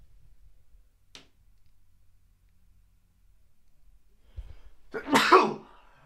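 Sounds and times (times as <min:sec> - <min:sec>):
single loud sharp sneeze: 0:04.9 - 0:05.8.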